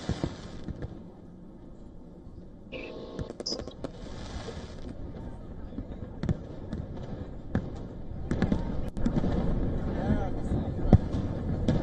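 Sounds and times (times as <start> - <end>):
fireworks show explosions in New York City: 0.0 - 1.1, 2.8 - 11.8
crowd voices murmuring: 4.4 - 11.8.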